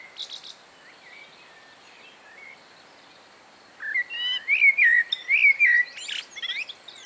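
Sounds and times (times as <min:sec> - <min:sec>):
common blackbird singing fluted notes and mellow whistles: 0:03.9 - 0:07.0.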